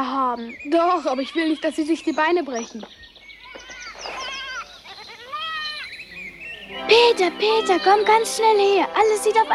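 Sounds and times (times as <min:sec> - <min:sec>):
speech: 0:00.0 - 0:03.1, 0:06.8 - 0:09.5
herd of goats bleating: 0:03.5 - 0:06.0, 0:07.0 - 0:08.4.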